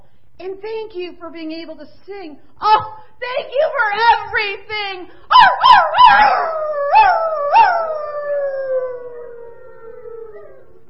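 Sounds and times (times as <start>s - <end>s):
speech: 0.4s - 7.7s
puppy howling: 5.3s - 10.8s.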